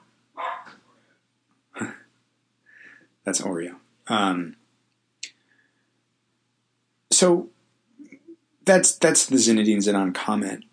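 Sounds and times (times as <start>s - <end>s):
quiet hum: 0.0s - 10.7s
dog barking: 0.4s - 0.8s
speech: 3.2s - 4.6s, 7.2s - 7.5s, 8.7s - 10.7s.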